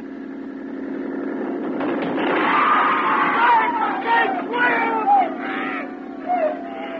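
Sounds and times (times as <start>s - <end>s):
steady low rumble like a boat engine: 0.0s - 6.9s
people on a crowded boat including women and children screaming in panic: 2.2s - 6.9s.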